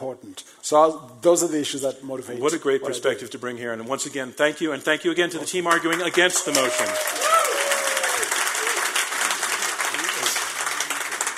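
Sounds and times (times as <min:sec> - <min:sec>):
speech: 0:00.0 - 0:07.4
audience applause in a room: 0:05.7 - 0:11.3.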